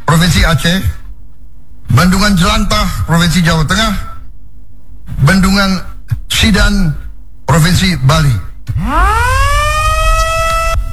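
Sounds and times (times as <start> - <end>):
speech: 0.3 - 1.0, 1.9 - 4.1, 5.1 - 9.6
siren wailing at dam inauguration ceremony in Lombok West Nusa Tenggara: 8.7 - 10.9.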